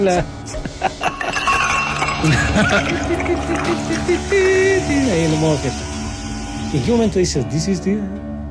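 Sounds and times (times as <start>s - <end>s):
speech: 0.0s - 1.1s, 2.2s - 5.9s, 6.7s - 8.2s
ice cubes clinking against drinking glasses: 0.5s - 6.1s.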